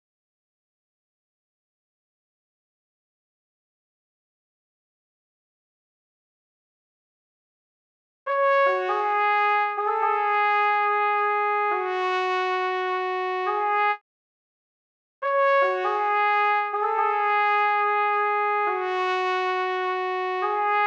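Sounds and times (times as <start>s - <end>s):
C# minor horn loop: 8.3s - 14.0s, 15.2s - 20.8s.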